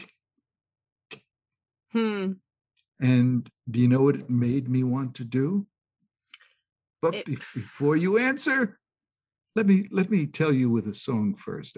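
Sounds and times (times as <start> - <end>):
speech: 1.9 - 2.4, 3.0 - 5.7, 7.0 - 8.8, 9.6 - 11.7
short drawn-out voiced tone: 3.0 - 5.6, 7.0 - 8.7, 9.6 - 11.7.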